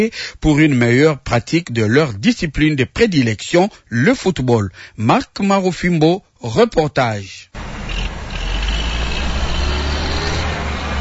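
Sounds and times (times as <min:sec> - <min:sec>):
speech: 0:00.0 - 0:08.0
broadband mechanical noise of heavy construction machinery: 0:07.6 - 0:10.9
heavy construction machinery diesel engines rumbling at a stadium: 0:07.6 - 0:10.9.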